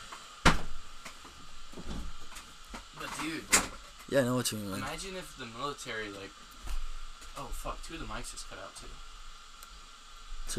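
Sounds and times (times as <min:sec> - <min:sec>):
door thudding shut: 0:00.4 - 0:00.8
speech: 0:03.2 - 0:06.5, 0:07.4 - 0:09.1.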